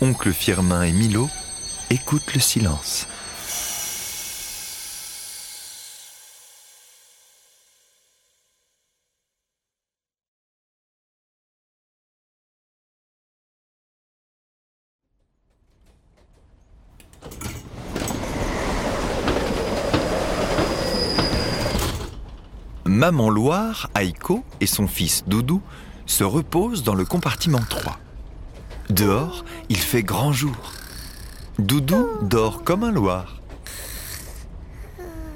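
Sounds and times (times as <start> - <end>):
train stopping with rumbling wheel noise and squeals: 0.0 - 7.3, 15.7 - 34.4
speech: 0.1 - 3.6, 23.0 - 28.0, 28.9 - 30.8, 31.6 - 33.4
rail rumble and clatter: 15.2 - 31.6, 32.6 - 35.0.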